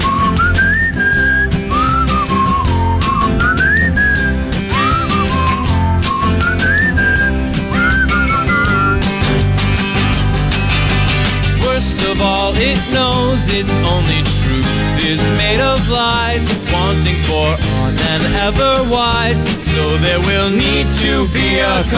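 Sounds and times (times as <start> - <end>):
person whistling a lilting melody: 0.0 - 9.2
band accompaniment with drums and bass: 0.0 - 21.9
speech: 17.1 - 21.9.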